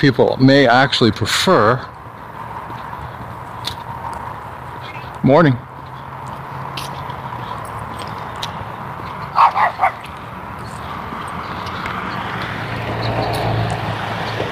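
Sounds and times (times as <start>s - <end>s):
speech: 0.0s - 1.9s, 5.2s - 5.6s
low traffic rumble: 0.0s - 14.5s
outdoor noise: 0.0s - 14.5s
small dog barking: 9.3s - 10.1s.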